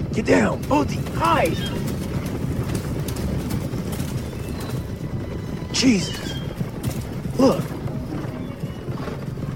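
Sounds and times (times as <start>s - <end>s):
dense rumble of many horses' hooves pounding the ground: 0.0s - 9.5s
speech: 0.2s - 1.9s, 5.7s - 6.3s, 7.4s - 7.8s.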